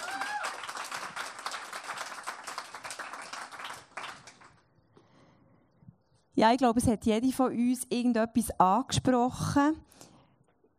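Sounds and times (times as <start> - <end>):
audience applause: 0.0 - 4.6
speech: 6.4 - 9.9.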